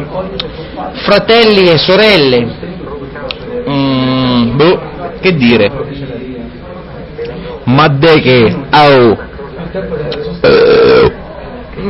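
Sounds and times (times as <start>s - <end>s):
speech: 0.2s - 2.6s, 3.7s - 6.1s, 7.7s - 11.0s
person burping after eating sandwiches: 10.4s - 11.2s.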